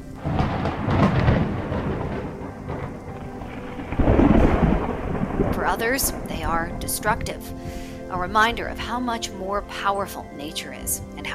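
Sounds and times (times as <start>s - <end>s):
steady rain hissing: 0.0s - 8.8s
deep rolling thunder: 0.0s - 8.9s
speech: 5.7s - 11.3s.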